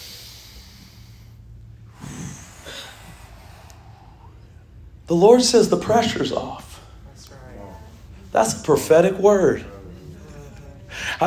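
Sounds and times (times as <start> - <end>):
congregation taking a deep breath together at a church service: 0.0 - 4.8, 10.9 - 11.2
speech: 5.1 - 6.7, 8.4 - 9.7.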